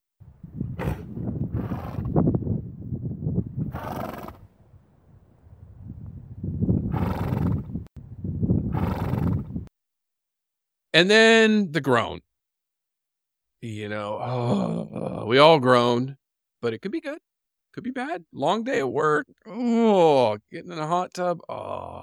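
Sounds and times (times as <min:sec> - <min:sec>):
horse blowing forceful exhalations through the nose: 0:00.4 - 0:02.3, 0:03.6 - 0:04.6, 0:06.8 - 0:07.9, 0:08.6 - 0:09.7
speech: 0:11.0 - 0:12.3, 0:13.6 - 0:22.0.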